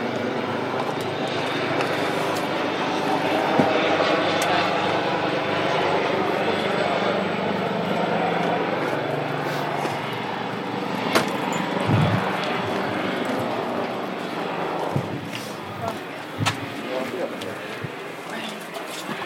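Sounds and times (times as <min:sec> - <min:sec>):
airplane engine roar passing overhead: 0:00.0 - 0:19.2.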